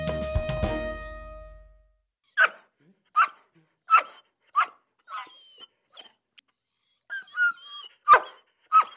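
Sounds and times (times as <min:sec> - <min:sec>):
brief musical lead-in: 0:00.0 - 0:02.0
excited playful dog barking in sharp loud yaps: 0:02.4 - 0:06.1, 0:07.1 - 0:08.9.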